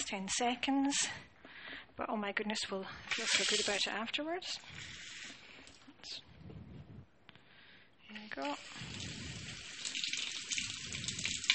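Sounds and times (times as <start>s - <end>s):
speech: 0.1s - 1.3s, 2.0s - 5.0s, 6.0s - 6.3s, 8.2s - 9.1s
hands being washed under a running tap: 3.1s - 3.9s, 4.8s - 5.8s, 8.4s - 11.5s.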